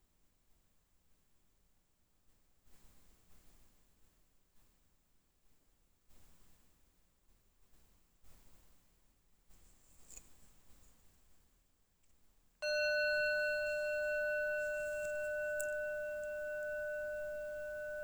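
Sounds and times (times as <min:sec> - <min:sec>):
faint ticks: 0:12.6 - 0:18.0
meditation bell ringing: 0:12.6 - 0:18.0.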